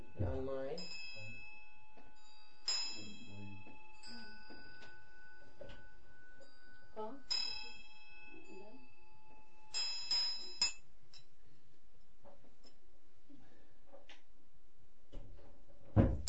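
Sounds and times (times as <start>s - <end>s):
ritual hand bell ringing: 0.0s - 10.8s.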